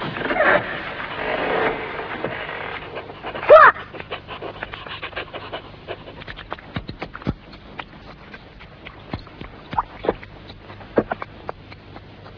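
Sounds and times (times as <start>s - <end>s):
dog sniffing: 1.1s - 12.3s
dog panting: 2.5s - 12.3s.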